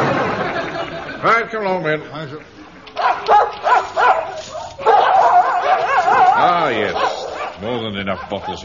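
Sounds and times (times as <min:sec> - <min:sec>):
laughter: 0:00.0 - 0:03.1
speech: 0:01.2 - 0:03.6, 0:06.4 - 0:08.6
dogs barking in pens: 0:02.9 - 0:08.6.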